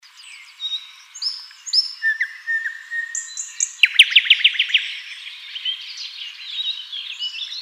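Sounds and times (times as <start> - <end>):
common nightingale Luscinia megarhynchos singing varied whistles and chirps: 0.0 - 7.5.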